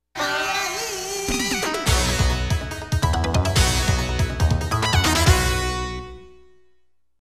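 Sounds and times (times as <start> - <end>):
player two victory background game music: 1.3 - 6.5.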